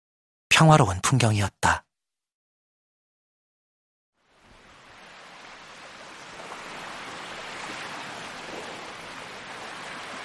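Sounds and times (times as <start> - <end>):
speech: 0.5 - 1.8
surf washing onto a wide sandy beach: 4.2 - 10.2.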